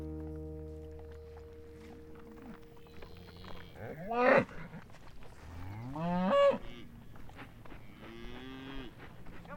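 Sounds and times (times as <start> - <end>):
cows mooing in a farmyard: 0.2 - 4.8, 5.5 - 7.0, 7.8 - 9.0.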